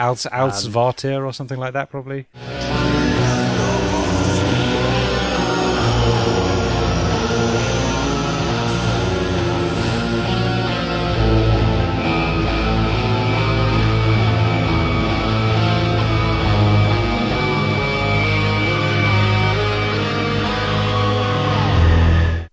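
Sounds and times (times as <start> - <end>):
speech: 0.0 - 2.9
dark creepy music intro with heavy doomy bass drone: 2.4 - 22.5
background screams: 2.7 - 12.4, 18.2 - 22.5.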